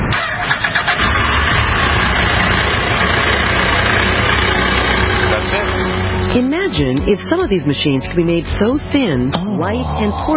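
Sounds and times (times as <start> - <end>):
car engine cranking, starting and idling: 0.0 - 9.3
speech: 6.3 - 10.3.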